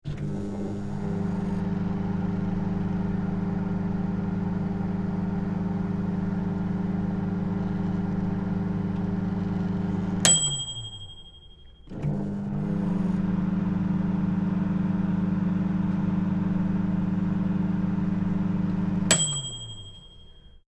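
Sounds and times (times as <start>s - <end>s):
microwave oven running: 0.0s - 20.5s
microwave oven finish ding: 8.0s - 12.2s, 17.2s - 20.6s.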